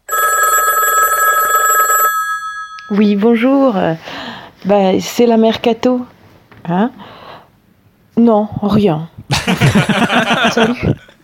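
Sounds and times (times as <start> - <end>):
telephone ringing with a bright electronic trill: 0.0 - 3.5
faint tonal hum: 2.1 - 4.4
speech: 2.9 - 7.2, 8.2 - 11.0
laughter: 9.3 - 11.2.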